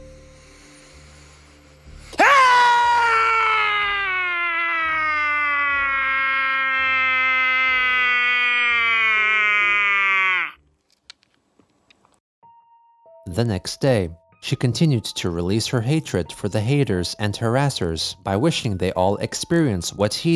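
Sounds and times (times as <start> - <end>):
woman shrieking in frustration: 2.2 - 10.6
speech: 13.4 - 20.3.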